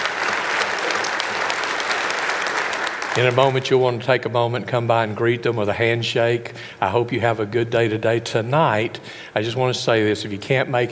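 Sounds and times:
audience applauding: 0.0s - 3.7s
speech: 3.2s - 10.9s.

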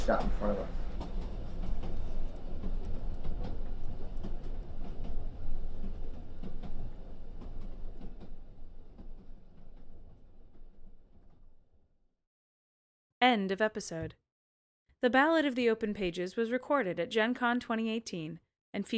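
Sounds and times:
train rolling along rails at night with a low rumble: 0.0s - 11.4s
speech: 0.1s - 0.8s, 13.2s - 14.2s, 15.0s - 18.9s.

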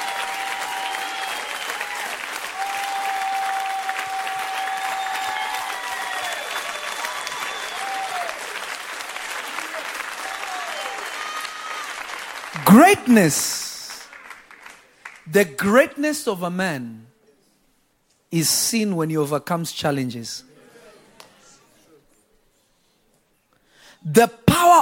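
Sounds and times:
people cheering and shouting: 0.0s - 14.4s
large audience clapping and applauding: 0.0s - 15.9s
speech: 12.7s - 13.6s, 15.3s - 17.1s, 18.3s - 20.5s, 24.2s - 24.7s.

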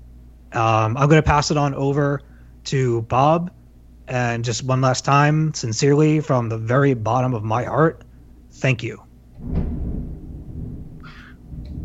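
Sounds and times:
speech: 0.5s - 9.6s
deep rolling rumble of thunder: 9.3s - 11.8s.

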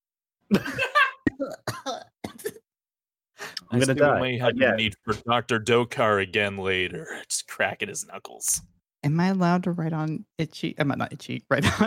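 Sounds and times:
speech: 0.5s - 0.8s, 3.7s - 11.8s
person coughing: 0.5s - 2.6s.

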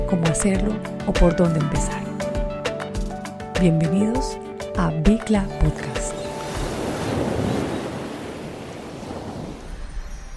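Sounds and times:
speech: 0.1s - 2.0s, 3.6s - 6.2s
ocean waves breaking on shore: 5.7s - 10.3s
wind noise: 6.4s - 10.3s.

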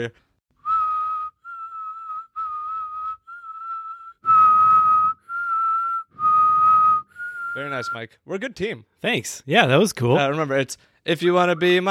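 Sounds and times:
speech: 0.0s - 0.3s, 7.6s - 11.8s
person whistling short sustained notes as a warm-up: 0.6s - 8.0s.

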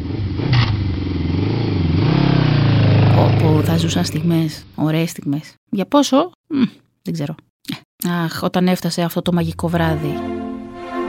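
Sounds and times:
motorcycle engine revving: 0.0s - 4.8s
speech: 3.8s - 10.4s.

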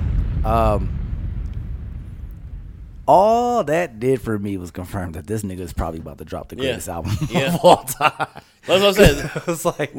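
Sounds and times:
heavy booming explosion effect: 0.0s - 5.0s
speech: 0.4s - 1.0s, 3.1s - 9.9s
laughter: 6.6s - 9.9s.

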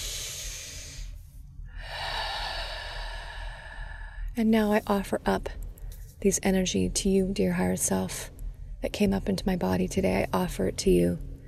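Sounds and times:
deep breathing during a guided meditation: 0.0s - 4.4s
speech: 4.4s - 5.6s, 6.2s - 11.3s.

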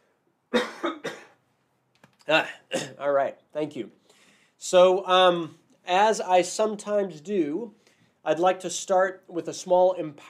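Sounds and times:
person coughing: 0.6s - 1.4s, 2.3s - 3.0s
speech: 2.3s - 4.0s, 4.6s - 10.2s.

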